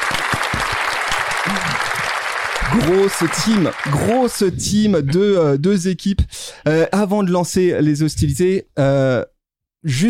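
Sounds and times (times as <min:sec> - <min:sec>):
faint voice or cheer: 0:00.0 - 0:04.3
loud sustained applause from a crowd: 0:00.0 - 0:04.7
speech: 0:02.7 - 0:10.0.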